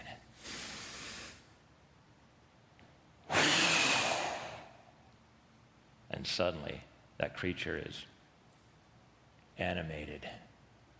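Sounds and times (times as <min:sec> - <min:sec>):
person performing a deep breath: 0:00.3 - 0:01.6, 0:03.3 - 0:05.0
speech: 0:06.2 - 0:08.1, 0:09.6 - 0:10.5.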